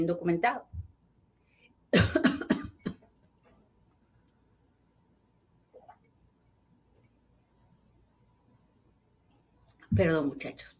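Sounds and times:
speech: 0:00.0 - 0:00.7, 0:09.9 - 0:10.7
person in a short coughing fit: 0:01.9 - 0:03.0.

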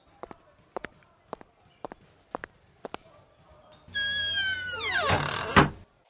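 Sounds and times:
footsteps walking: 0:00.0 - 0:03.8
door creaking and squealing: 0:03.9 - 0:05.9.

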